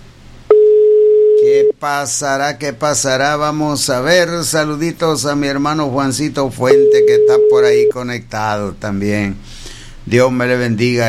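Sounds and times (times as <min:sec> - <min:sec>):
telephone line tone on a call that fails to connect: 0:00.5 - 0:01.7, 0:06.7 - 0:07.9
speech: 0:01.8 - 0:11.0.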